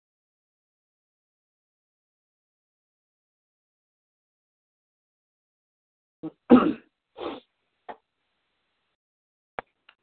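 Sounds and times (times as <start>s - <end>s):
sneeze: 6.2s - 7.5s.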